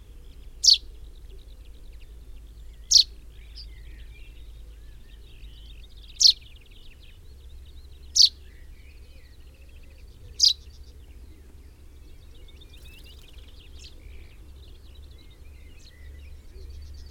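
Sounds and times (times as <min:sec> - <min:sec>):
faint background rumble: 0:00.0 - 0:17.0
Fringilla coelebs common chaffinch calling with bright piercing notes: 0:00.6 - 0:00.9, 0:02.8 - 0:03.6, 0:06.1 - 0:06.4, 0:08.1 - 0:08.4, 0:12.4 - 0:15.0.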